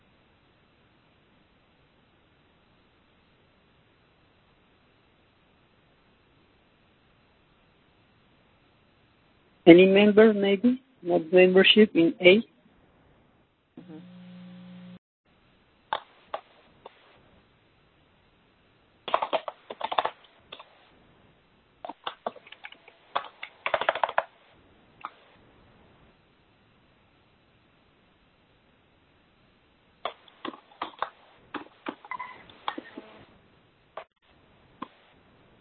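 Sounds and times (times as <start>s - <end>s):
faint hum: 0.0s - 35.5s
speech: 9.7s - 12.5s
brief low tone: 13.8s - 15.0s
computer keyboard typing: 19.1s - 20.8s, 21.8s - 24.3s, 30.1s - 33.1s.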